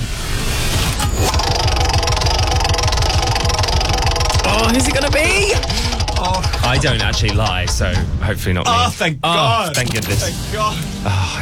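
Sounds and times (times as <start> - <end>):
prize wheel spinning with ticking clicks: 1.1 - 8.2
speech: 4.7 - 11.4.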